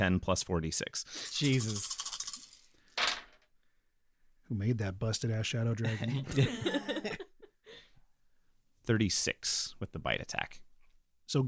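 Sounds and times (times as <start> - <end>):
speech: 0.0 - 2.0, 4.5 - 7.2, 8.8 - 10.7, 11.3 - 11.4
handful of d10 and d6 dice rattling across a hard surface: 1.2 - 3.4
laughter: 5.8 - 7.5.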